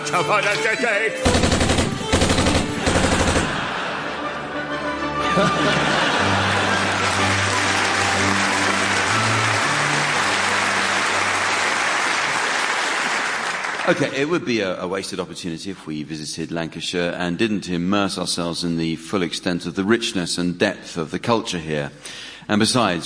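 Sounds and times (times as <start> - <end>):
speech: 0.1 - 1.7, 5.4 - 6.2, 13.9 - 23.0
machine gun firing: 1.2 - 3.7
laughter: 2.7 - 14.2.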